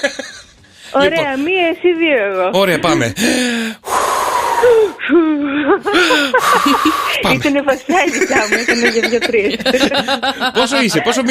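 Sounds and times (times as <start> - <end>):
laughter: 0.0 - 0.6, 5.1 - 11.2
speech: 0.0 - 3.9, 4.6 - 11.2
exaggerated heavy breathing like a childbirth breathing exercise: 3.1 - 5.1, 5.9 - 7.2.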